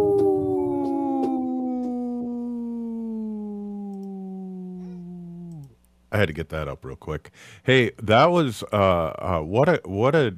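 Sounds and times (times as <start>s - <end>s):
wolf howling with a mournful tone: 0.0s - 5.7s
faint clicks: 3.8s - 4.2s, 4.8s - 6.0s
speech: 6.1s - 10.3s.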